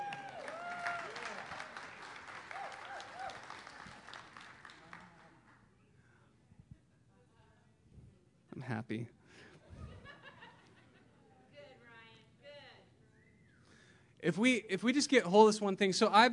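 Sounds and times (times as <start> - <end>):
audience clapping: 0.0 - 5.6
speech: 8.7 - 9.2, 14.2 - 16.3
laughter: 9.5 - 11.4.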